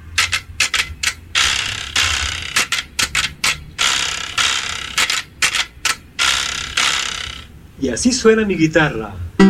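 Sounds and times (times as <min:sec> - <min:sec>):
carraca ratchet rattle being played: 0:00.0 - 0:07.5
speech: 0:07.8 - 0:09.4.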